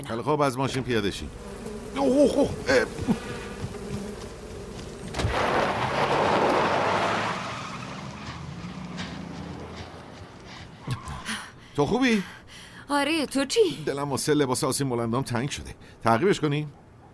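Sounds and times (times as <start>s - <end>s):
speech: 0.0s - 3.4s, 11.8s - 16.8s
bees buzzing inside a car during a traffic stop: 0.7s - 10.5s.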